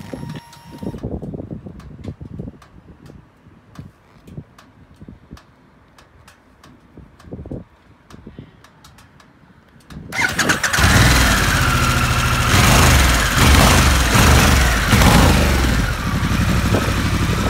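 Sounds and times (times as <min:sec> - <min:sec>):
Harley Davidson Sportster S motorcycle engine starting and exhaust: 0:10.1 - 0:17.4.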